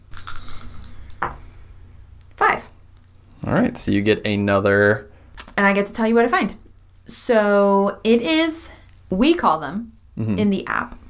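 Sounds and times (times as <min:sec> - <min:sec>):
low steady hum: 0:00.0 - 0:11.0
dice rattling across a hard surface: 0:00.1 - 0:01.2
speech: 0:03.5 - 0:11.0.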